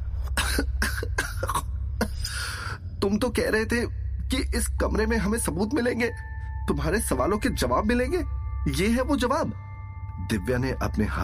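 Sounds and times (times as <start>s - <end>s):
steady low hum: 0.0s - 11.2s
woman coughing after brushing dust off a table: 0.4s - 2.2s
speech: 3.0s - 9.6s, 10.2s - 11.2s.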